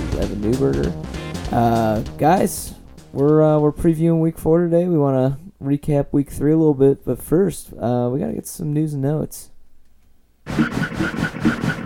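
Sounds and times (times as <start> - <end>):
speech: 0.2 - 9.5, 10.5 - 11.8
train chugging with rhythmic chuffs: 10.5 - 11.8.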